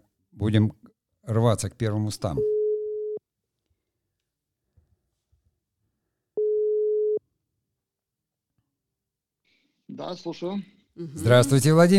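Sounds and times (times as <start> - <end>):
speech: 0.4 - 2.5, 10.0 - 11.9
telephone tones while a call is being dialed: 6.4 - 7.2.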